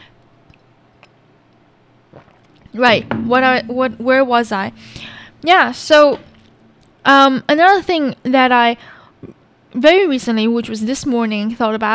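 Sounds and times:
speech: 2.1s - 6.3s, 7.0s - 11.9s
quiet sipping of water: 2.1s - 7.3s.

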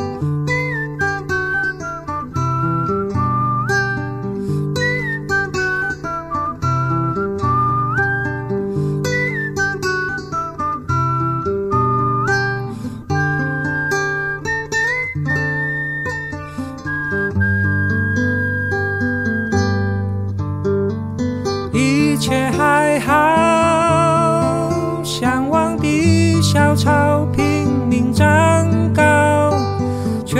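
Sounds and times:
whistled melody: 0.2s - 20.2s, 21.5s - 30.3s.

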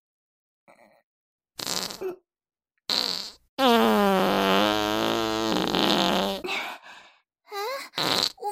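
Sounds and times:
farting: 1.6s - 2.2s, 2.9s - 6.4s, 8.0s - 8.4s.

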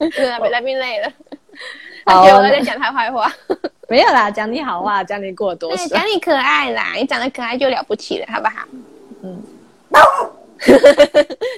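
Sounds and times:
speech: 0.0s - 11.5s
dog barking: 9.9s - 10.4s
laughter: 10.6s - 11.5s.

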